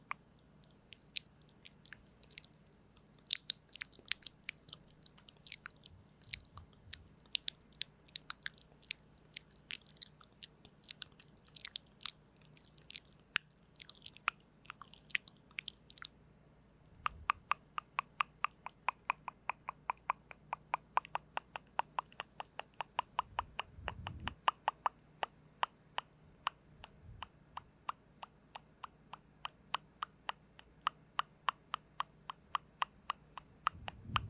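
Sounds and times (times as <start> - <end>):
soft wet mouth clicks and smacks: 0.0 - 16.2, 16.9 - 34.2
faint low hum: 0.0 - 34.2
dull low bumps: 23.2 - 24.4, 33.6 - 34.2.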